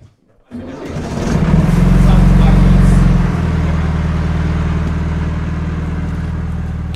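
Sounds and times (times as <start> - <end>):
motorboat engine starting, revving and idling: 0.5 - 6.9.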